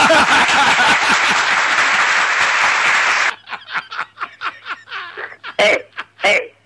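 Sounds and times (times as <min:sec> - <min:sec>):
crowd applause: 0:00.0 - 0:03.4
people laughing: 0:00.0 - 0:06.4.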